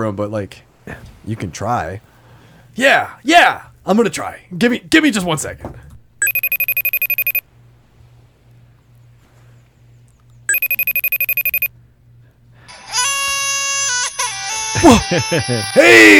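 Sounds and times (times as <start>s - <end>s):
speech: 0.0s - 2.1s, 2.8s - 5.9s, 14.8s - 16.1s
electronic FaceTime video call ringtone: 6.2s - 7.4s, 10.5s - 11.7s
laughter: 14.8s - 16.1s.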